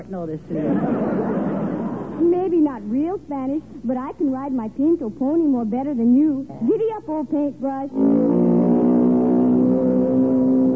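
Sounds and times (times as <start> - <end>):
speech: 0.0 - 1.6, 2.2 - 8.5
laughter: 0.5 - 2.5
outboard motor engine revving: 8.1 - 10.7.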